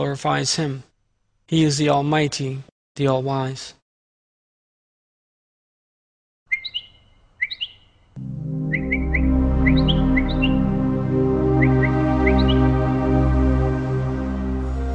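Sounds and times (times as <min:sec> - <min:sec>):
speech: 0:00.0 - 0:00.9, 0:01.5 - 0:03.8
bird chirping in short bright calls: 0:06.5 - 0:10.7, 0:11.6 - 0:12.8
droning musical backdrop: 0:08.2 - 0:14.9.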